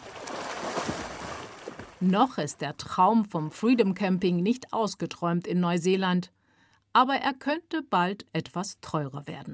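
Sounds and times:
water splashing and sloshing as people swim in a clear lake: 0:00.0 - 0:02.4
speech: 0:02.0 - 0:09.5.

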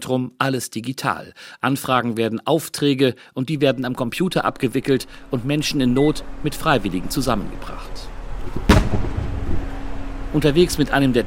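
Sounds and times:
speech: 0:00.0 - 0:08.7, 0:10.3 - 0:11.2
steady low rumble: 0:03.6 - 0:11.2
dull boom of distant artillery fire: 0:08.1 - 0:10.4.

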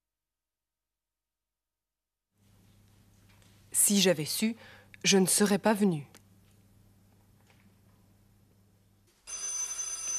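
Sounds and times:
speech: 0:03.9 - 0:06.2
telephone bell ringing: 0:09.2 - 0:10.1.

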